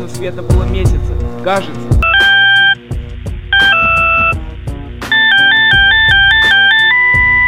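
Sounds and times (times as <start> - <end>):
speech: 0.0 - 2.0
telephone ringing with an electronic melodic ringtone over a low beat: 2.0 - 2.8, 3.5 - 4.4, 5.1 - 7.4.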